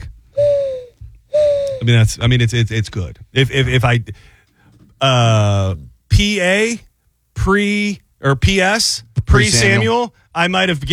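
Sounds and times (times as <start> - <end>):
person imitating a mourning dove call: 0.4 - 1.9
speech: 1.8 - 4.4, 5.0 - 10.9.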